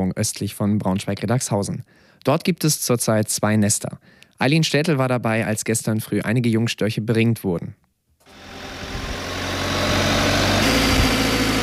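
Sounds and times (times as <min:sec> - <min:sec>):
speech: 0:00.0 - 0:08.4
aerial lift truck engine running: 0:08.3 - 0:11.6.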